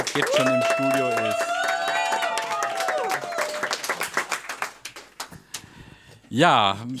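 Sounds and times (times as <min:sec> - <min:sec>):
live audience applause: 0:00.0 - 0:05.4
speech: 0:00.2 - 0:01.5, 0:06.3 - 0:06.9
audience whistling cheer: 0:00.2 - 0:03.9.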